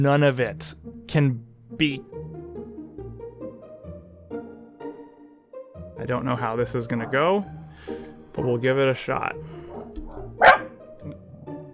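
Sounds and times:
speech: 0.0 - 2.3, 6.0 - 9.6
dog barking upstairs: 9.7 - 10.8.

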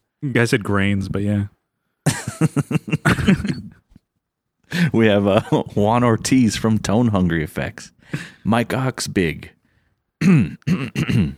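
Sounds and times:
speech: 0.2 - 3.5, 4.7 - 9.6, 10.2 - 11.3
laughter: 2.1 - 3.9, 4.7 - 6.3
throat clearing: 2.9 - 4.0, 10.2 - 11.3.

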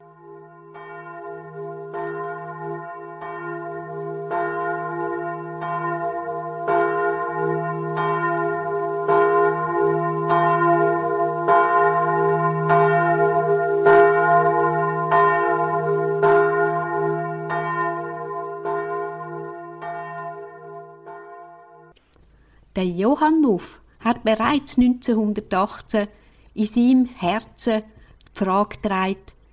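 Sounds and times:
church bell ringing: 0.0 - 22.0
speech: 22.8 - 29.3.

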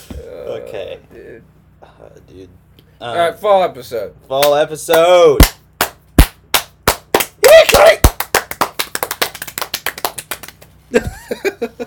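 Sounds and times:
speech: 0.5 - 5.6
hands clapping: 4.4 - 10.8
laughter: 10.9 - 11.8.

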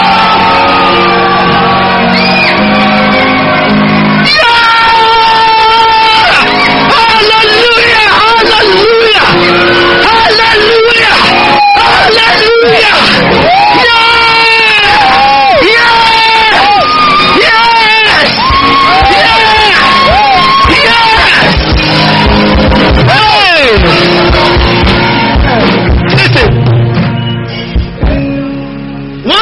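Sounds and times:
rising whoops and yells: 0.0 - 22.6
large crowd shouting, screaming and cheering: 0.0 - 28.1.

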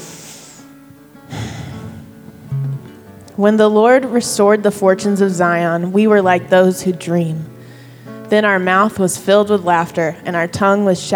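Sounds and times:
deep breath taken slowly: 0.0 - 2.6, 7.6 - 8.3
faint steady tones: 0.0 - 11.1
speech: 3.4 - 7.5, 8.3 - 11.1.

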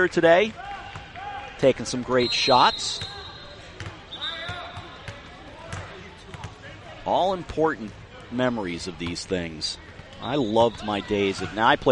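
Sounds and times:
speech: 0.0 - 0.6, 1.6 - 3.2, 7.1 - 11.9
basketball bouncing on a hard court floor during a game: 3.8 - 6.5.

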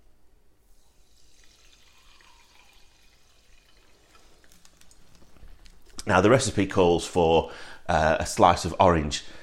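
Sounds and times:
bright fizzing hiss of soda water: 0.6 - 5.4
soda water pouring into a Collins glass with ice cubes: 0.7 - 5.3
speech: 6.1 - 9.4.

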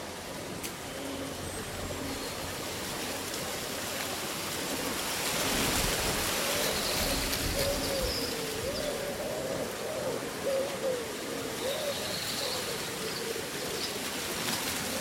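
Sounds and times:
leaves rustling in a steady summer breeze: 0.0 - 15.0
low soft cooing calls: 0.1 - 3.6, 6.0 - 15.0.

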